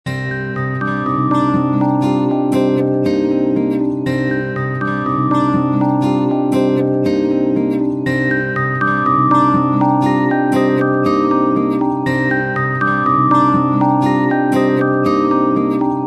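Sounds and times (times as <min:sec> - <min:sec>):
losing theme music: 0:00.1 - 0:16.0.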